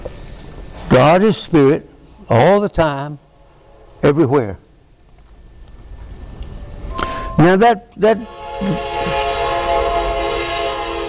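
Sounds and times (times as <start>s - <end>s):
speech: 0.9s - 3.2s, 4.0s - 4.6s, 7.4s - 9.0s
train whistle blowing a long sustained tone: 6.9s - 11.0s.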